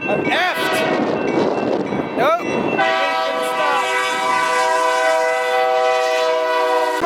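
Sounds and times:
slow freight train rumbling on the track: 0:00.0 - 0:07.0
freight train horn blast at a siding: 0:00.5 - 0:01.1, 0:02.8 - 0:07.0.

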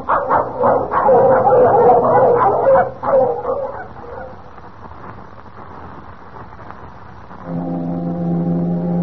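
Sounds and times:
dogs barking and yipping excitedly: 0:00.0 - 0:04.4
deep foghorn blast: 0:07.5 - 0:09.0.

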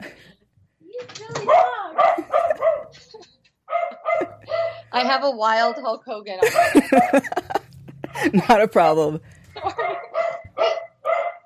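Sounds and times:
laughter: 0:00.0 - 0:00.3, 0:02.0 - 0:04.9, 0:06.4 - 0:08.8, 0:09.4 - 0:10.2
male dog barking excitedly: 0:01.4 - 0:03.0, 0:03.7 - 0:05.0, 0:05.6 - 0:06.0, 0:06.6 - 0:07.5, 0:09.6 - 0:11.4
speech: 0:05.0 - 0:07.4, 0:08.2 - 0:09.8.

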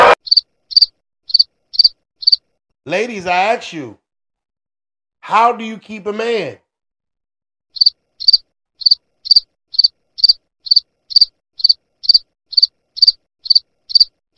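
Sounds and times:
crickets chirping: 0:00.3 - 0:02.4, 0:07.8 - 0:14.3
speech: 0:02.9 - 0:04.0, 0:05.3 - 0:06.6.

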